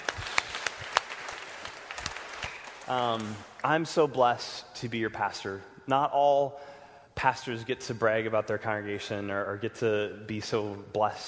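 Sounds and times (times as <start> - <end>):
audience applauding: 0.0 - 3.6
speech: 2.9 - 11.2.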